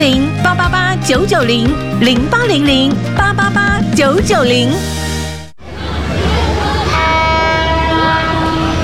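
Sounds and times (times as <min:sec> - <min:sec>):
speech: 0:00.0 - 0:05.1
train horn sounding while passing through a railway station: 0:06.8 - 0:08.8.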